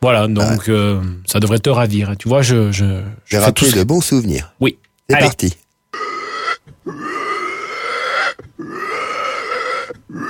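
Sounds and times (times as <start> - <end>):
speech: 0.0 - 5.6
pig grunting: 5.9 - 10.2.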